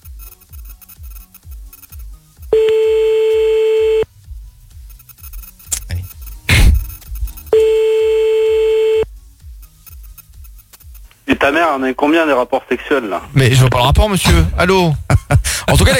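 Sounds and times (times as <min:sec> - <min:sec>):
telephone line tones as a call is redialled: 0:02.5 - 0:04.0, 0:07.4 - 0:09.1
speech: 0:11.4 - 0:15.1, 0:15.7 - 0:15.9.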